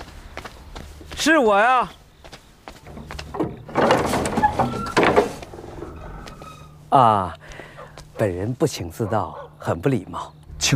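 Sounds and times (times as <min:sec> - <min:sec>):
speech: 0:01.2 - 0:02.0, 0:06.9 - 0:07.4, 0:08.2 - 0:10.7
door sliding open: 0:02.8 - 0:06.9.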